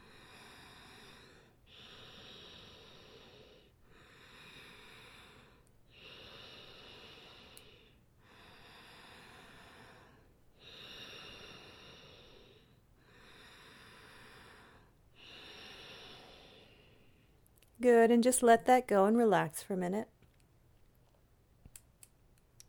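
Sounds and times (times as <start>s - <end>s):
continuous nasal breathing in and out: 0.0s - 17.4s
speech: 17.8s - 20.1s.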